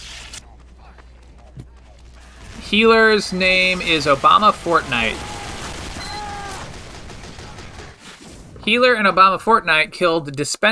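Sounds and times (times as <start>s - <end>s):
level 1 turret small gun firing in a video game: 2.1s - 8.3s
speech: 2.7s - 5.3s, 8.7s - 10.7s.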